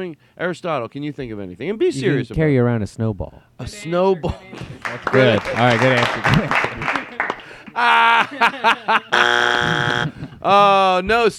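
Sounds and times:
speech: 0.0 - 7.0, 7.8 - 11.3
people chuckling: 4.2 - 10.4
harsh electronic game buzzer: 9.1 - 10.2.

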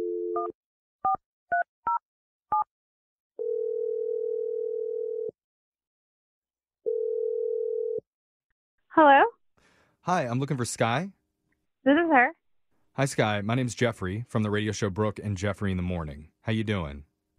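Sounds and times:
speech: 0.4 - 1.2, 9.0 - 9.4, 10.1 - 11.2, 11.8 - 12.4, 13.0 - 17.1
steady telephone dial tone: 3.4 - 5.3, 6.8 - 8.0.

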